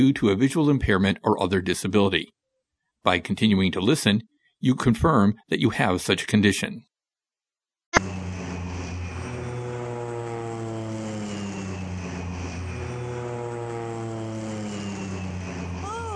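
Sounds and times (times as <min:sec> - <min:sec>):
speech: 0:00.0 - 0:02.4, 0:03.0 - 0:06.9, 0:07.9 - 0:08.2
propeller airplane engine climbing: 0:08.0 - 0:16.1.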